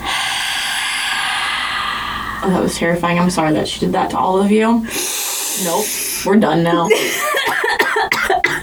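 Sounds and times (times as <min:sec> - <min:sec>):
loud deep breathing exercise: 0:00.0 - 0:02.9, 0:04.8 - 0:06.3
speech: 0:02.4 - 0:08.6
laughter: 0:06.6 - 0:08.4.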